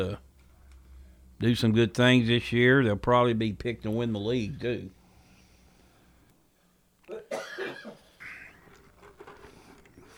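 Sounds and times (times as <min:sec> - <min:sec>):
speech: 0:00.0 - 0:00.3, 0:01.4 - 0:05.0
breathy noises: 0:05.0 - 0:06.8, 0:08.0 - 0:10.1
person coughing: 0:07.1 - 0:08.5.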